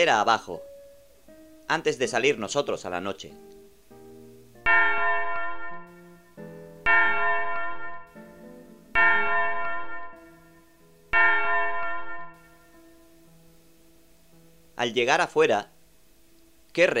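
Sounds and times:
speech: 0.0s - 0.7s, 1.7s - 3.6s, 14.8s - 15.7s, 16.8s - 16.9s
church bell tolling: 4.6s - 8.2s, 8.9s - 12.9s.

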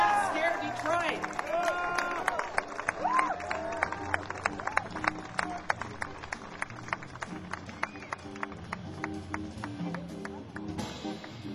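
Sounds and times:
large crowd applauding: 0.0s - 11.4s.

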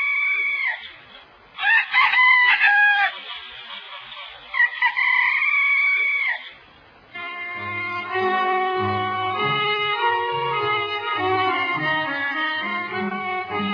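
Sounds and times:
rooster crowing at dawn: 1.6s - 3.3s, 4.6s - 6.6s
tonal music: 7.2s - 13.7s.

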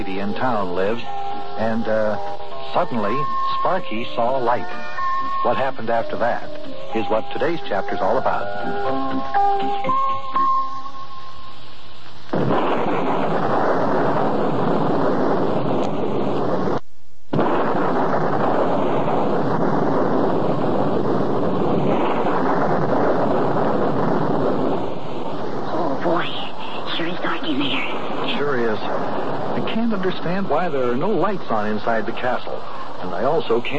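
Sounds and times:
speech: 0.0s - 10.5s, 33.5s - 33.7s
stormy wind roaring in gusts: 9.9s - 16.8s, 17.4s - 33.7s.

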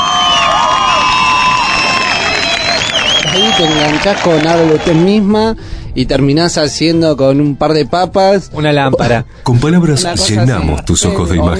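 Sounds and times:
large crowd cheering and shouting: 0.0s - 5.2s
speech: 3.4s - 11.5s.

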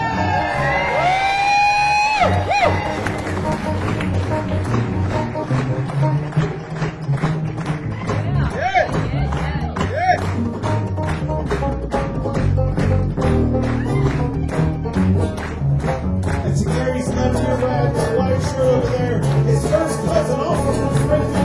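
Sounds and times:
high whoops and shouts: 0.0s - 3.1s, 13.7s - 14.9s
crowd at a live music show cheering and applauding: 0.0s - 21.4s.

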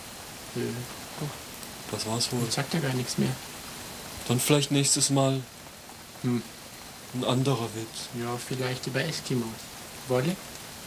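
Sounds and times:
rain falling at a campsite: 0.0s - 10.8s
speech: 0.6s - 3.6s, 4.3s - 5.6s, 6.2s - 10.6s.

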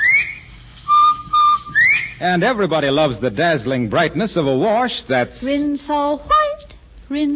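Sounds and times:
whistled bobwhite quail call: 0.0s - 2.2s
speech: 2.2s - 6.4s, 7.1s - 7.3s.

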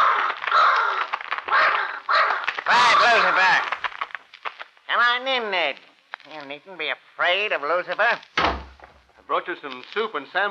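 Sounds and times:
huge black raven cawing: 0.0s - 3.8s
speech: 5.2s - 8.5s, 9.3s - 10.4s.

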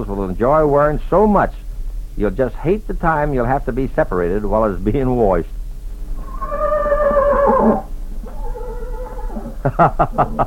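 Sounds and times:
speech: 0.0s - 5.6s, 9.7s - 10.4s
horse whinnying and nickering: 6.2s - 9.7s
laughter: 9.4s - 10.4s.

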